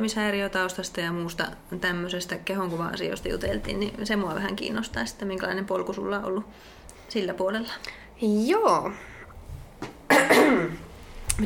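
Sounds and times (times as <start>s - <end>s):
speech: 0.0s - 9.1s
person clearing throat: 10.1s - 10.8s.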